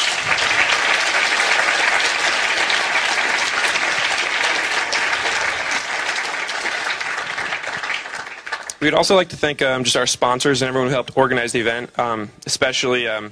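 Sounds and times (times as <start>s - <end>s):
large audience applause: 0.0s - 9.2s
speech: 8.8s - 13.3s.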